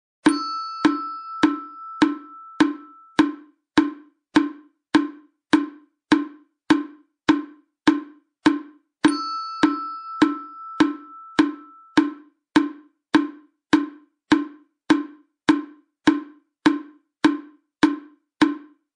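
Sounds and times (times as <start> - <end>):
muyu wooden fish drum: 0.3 - 18.9.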